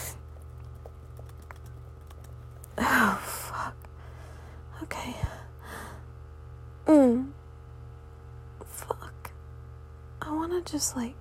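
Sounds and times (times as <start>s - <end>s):
steady low electrical hum: 0.0s - 11.1s
typing on a computer keyboard: 0.3s - 2.7s
speech: 10.6s - 11.1s.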